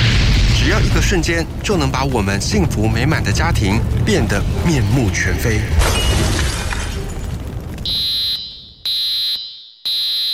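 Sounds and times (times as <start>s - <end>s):
harsh crackling noise: 0.0s - 9.2s
speech: 0.8s - 6.4s
residential smoke alarm beeping: 7.9s - 10.3s.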